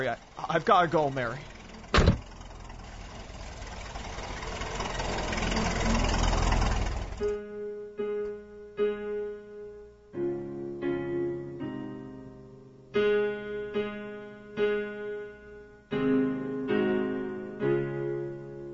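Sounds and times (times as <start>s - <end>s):
speech: 0.0s - 1.5s, 7.2s - 7.4s
car engine idling: 0.0s - 7.4s
soft sustained musical passage: 7.3s - 18.7s.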